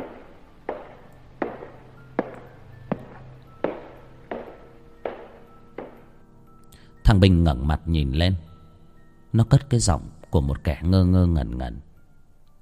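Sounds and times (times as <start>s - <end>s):
footsteps echoing along a cold prison cellblock corridor: 0.0s - 6.1s
speech: 7.1s - 8.5s, 9.3s - 11.9s.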